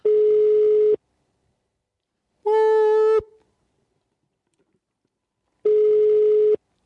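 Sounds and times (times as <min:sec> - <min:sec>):
telephone ringback tone of a call to a cheap hotel in Germany: 0:00.0 - 0:01.0, 0:05.6 - 0:06.6.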